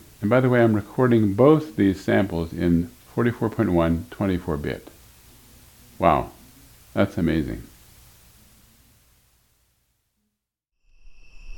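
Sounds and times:
broadband noise hiss: 0:00.0 - 0:10.2
speech: 0:00.2 - 0:05.0, 0:06.0 - 0:07.7
night crickets chirping outdoors: 0:10.8 - 0:11.5.

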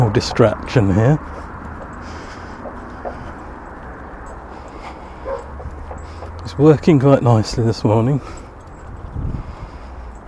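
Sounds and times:
steady outdoor rumble of traffic or wind: 0:00.0 - 0:10.2
speech: 0:00.1 - 0:02.2, 0:06.5 - 0:08.4
dogs barking and yipping in gardens: 0:01.3 - 0:06.4.

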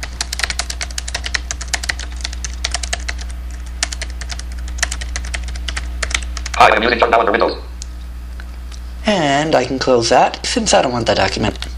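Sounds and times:
typing on a computer keyboard in a word processor: 0:00.0 - 0:06.6
speech: 0:06.6 - 0:07.7, 0:09.1 - 0:11.7.

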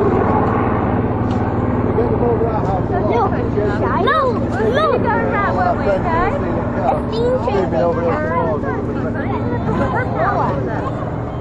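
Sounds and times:
helicopter flying low overhead: 0:00.0 - 0:11.3
several people chattering: 0:01.9 - 0:11.3.

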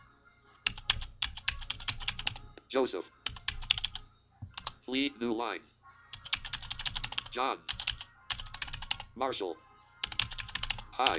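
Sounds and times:
computer keyboard typing: 0:00.6 - 0:02.5, 0:03.2 - 0:04.8, 0:06.1 - 0:09.1, 0:10.0 - 0:11.1
speech: 0:02.7 - 0:03.2, 0:04.9 - 0:05.7, 0:07.4 - 0:07.7, 0:09.2 - 0:09.6, 0:11.0 - 0:11.1.

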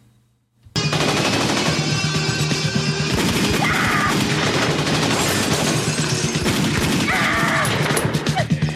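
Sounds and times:
dense loud barrage of rapid gunfire: 0:00.8 - 0:02.3, 0:03.0 - 0:08.4.

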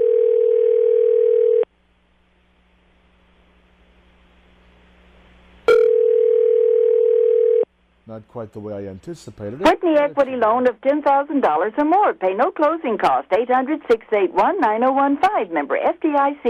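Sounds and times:
telephone dial tone: 0:00.0 - 0:01.7, 0:05.7 - 0:07.6
faint low buzz: 0:01.5 - 0:13.2
speech: 0:08.2 - 0:16.4.

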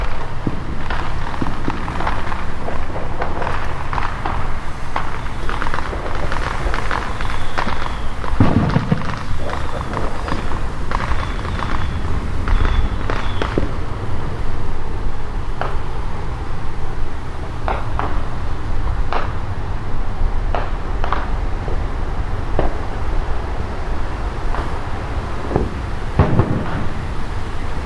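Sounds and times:
fireworks banging and crackling: 0:00.0 - 0:27.8.

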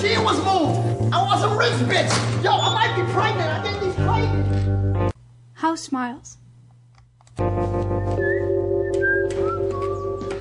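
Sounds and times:
speech: 0:00.2 - 0:04.6, 0:05.6 - 0:06.4
person whistling a tune: 0:07.9 - 0:10.3.

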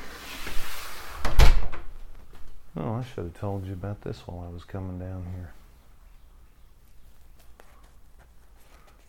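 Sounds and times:
door swinging shut with a solid low thump: 0:01.2 - 0:02.0
speech: 0:02.8 - 0:05.6.

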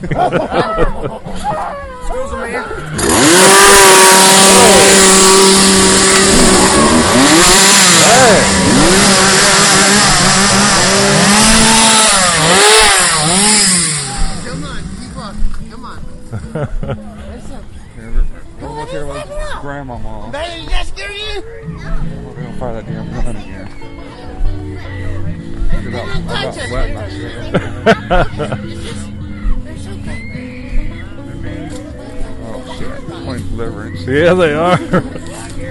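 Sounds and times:
speech: 0:00.0 - 0:03.4, 0:16.6 - 0:24.0, 0:24.6 - 0:28.8, 0:34.0 - 0:35.2
laughter: 0:00.0 - 0:05.3, 0:16.3 - 0:17.9, 0:23.8 - 0:30.3, 0:34.2 - 0:35.6
voices chattering: 0:00.0 - 0:35.6
chainsaw engine running and revving: 0:02.7 - 0:15.3.

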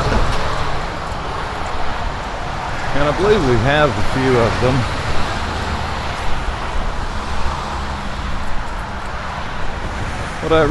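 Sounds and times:
train rolling past: 0:00.0 - 0:10.6
speech: 0:03.0 - 0:05.0, 0:10.5 - 0:10.6.

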